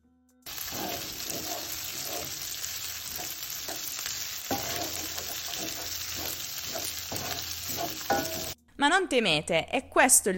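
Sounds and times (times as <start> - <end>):
spaghetti frying in scorching sauce in a pot: 0.5 - 8.6
speech: 8.8 - 10.3.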